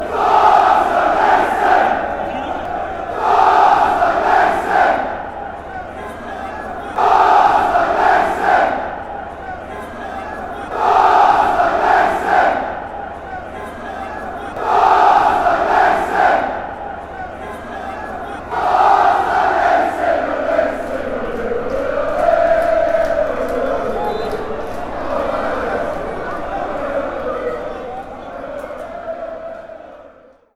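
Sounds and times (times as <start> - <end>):
fans chanting: 0.0 - 30.5.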